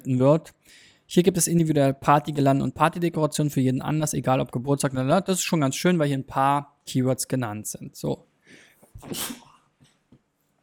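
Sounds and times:
speech: 0.0 - 9.5
faint breaths: 0.6 - 1.1
person sneezing: 8.9 - 9.7.

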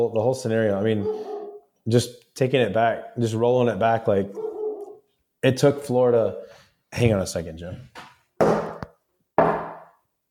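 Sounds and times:
speech: 0.0 - 4.4, 5.4 - 8.1
dog barking outside: 1.0 - 1.6, 4.3 - 5.0.

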